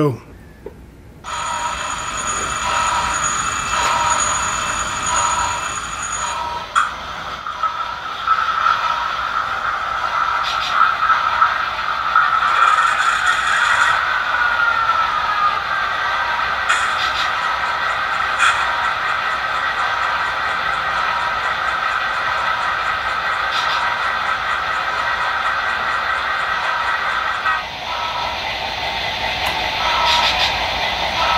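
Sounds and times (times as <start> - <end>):
speech: 0.0 - 0.3
faint whistle-like tone: 0.2 - 6.9
steam engine running around a track: 1.2 - 31.3.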